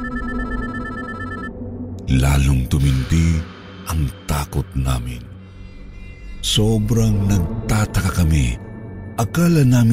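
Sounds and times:
mobile phone with SIM card removed, ringtone chiming: 0.0s - 1.5s
speech: 2.1s - 5.3s, 6.4s - 8.6s, 9.2s - 9.9s.

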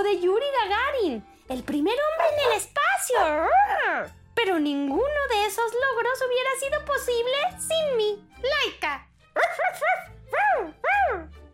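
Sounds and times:
speech: 0.0s - 11.4s
small dog barking in high-pitched yaps: 9.4s - 11.2s.

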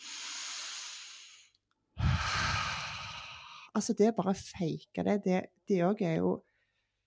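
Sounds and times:
person imitating heavy sleep breathing: 0.0s - 3.8s
speech: 3.8s - 6.5s.

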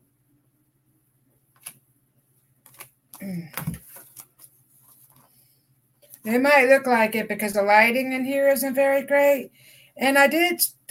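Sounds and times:
deck of cards being shuffled: 1.5s - 1.8s, 2.6s - 5.3s
speech: 3.2s - 3.8s, 6.3s - 10.8s.

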